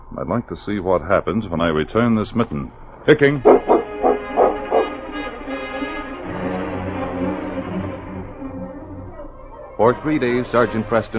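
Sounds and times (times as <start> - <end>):
steady droning background: 0.0 - 11.1
speech: 0.1 - 3.7, 9.8 - 11.1
sled dog team barking: 3.5 - 5.1.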